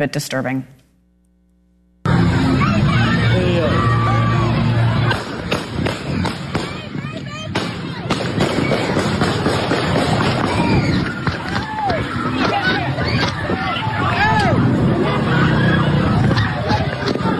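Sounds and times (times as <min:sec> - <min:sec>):
crowd murmuring at an outdoor festival: 0:02.1 - 0:17.3
people shouting in commotion: 0:02.1 - 0:17.3
gunshots cracking near a crowded outdoor festival: 0:05.0 - 0:06.8, 0:07.5 - 0:11.8.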